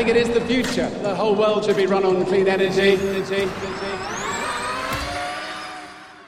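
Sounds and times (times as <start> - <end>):
speech: 0.0 - 4.3
high-pitched electric whine of a Formula E race car driving past: 2.4 - 6.2.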